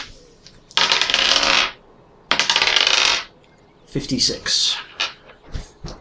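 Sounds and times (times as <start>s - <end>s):
ten-sided percentage dice clattering across a hard surface: 0.7s - 3.3s
person talking: 3.9s - 4.9s.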